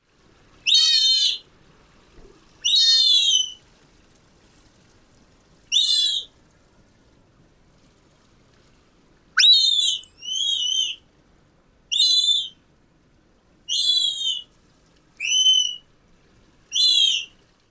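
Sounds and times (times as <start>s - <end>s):
sea otter pup screaming recorded with parabolic microphone: 0.7s - 1.4s, 2.6s - 3.6s, 5.7s - 6.3s, 9.4s - 11.0s, 11.9s - 12.5s, 13.7s - 14.4s, 15.2s - 15.8s, 16.7s - 17.3s.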